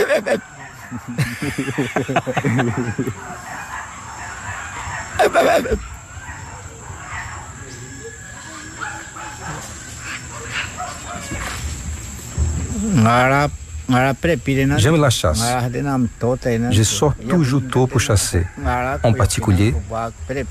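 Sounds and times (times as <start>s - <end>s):
laughter: 0.0s - 3.6s, 5.2s - 5.9s
speech: 0.1s - 3.6s, 5.2s - 5.9s, 12.8s - 20.4s
person imitating spider monkey calls: 5.2s - 5.8s.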